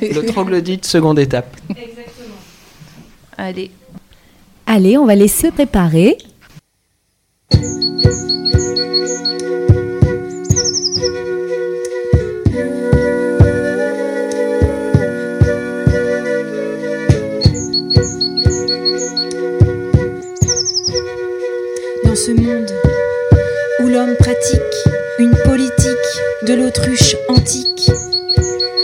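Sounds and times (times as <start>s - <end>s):
speech: 0.0s - 1.9s, 3.4s - 3.8s, 4.7s - 6.3s, 7.5s - 10.0s, 22.2s - 23.0s, 23.9s - 28.8s
blue tit singing: 7.5s - 9.6s, 10.3s - 11.3s, 17.4s - 19.4s, 20.2s - 21.1s, 23.9s - 28.8s
great tit singing: 7.5s - 9.6s, 10.3s - 11.2s, 17.4s - 19.4s, 20.2s - 21.1s, 27.2s - 28.8s
musical backing with plucked rhythmic beat: 7.5s - 28.8s.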